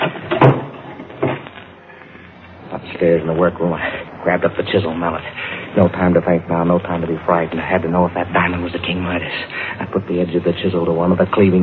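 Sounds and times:
closet door closing and being locked: 0.0 - 1.4
speech: 3.0 - 11.6.

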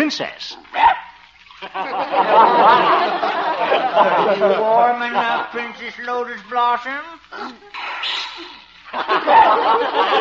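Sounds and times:
speech: 0.1 - 1.0, 1.6 - 10.1
laughter: 1.6 - 6.0, 8.9 - 10.1
small Pekingese dog sneezing while being given a bath: 7.4 - 8.7.

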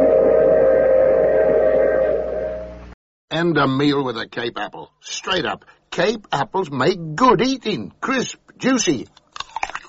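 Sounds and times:
train whistle blowing as the train arrives: 0.0 - 2.8
speech: 3.3 - 9.2.

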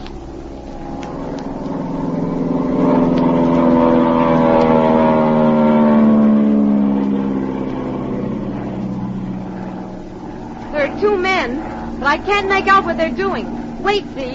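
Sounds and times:
propeller plane flying low overhead over a boat on the ocean: 0.0 - 14.3
speech: 11.1 - 14.3.

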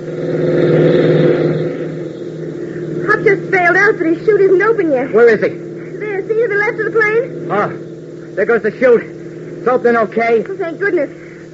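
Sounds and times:
jeep engine racing across an airfield: 0.0 - 11.5
speech: 3.9 - 5.7, 6.8 - 7.8, 8.4 - 11.2.

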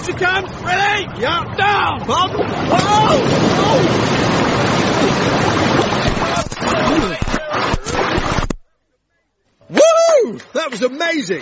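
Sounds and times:
speech: 0.0 - 7.7, 10.3 - 11.4
rocky fast-flowing whitewater rapids roaring: 0.0 - 8.5
splashing: 2.0 - 8.6.

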